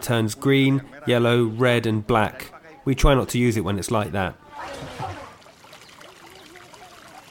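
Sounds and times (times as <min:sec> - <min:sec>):
speech: 0:00.0 - 0:05.2
water trickling through a shallow open sewer channel in a village: 0:04.6 - 0:07.2.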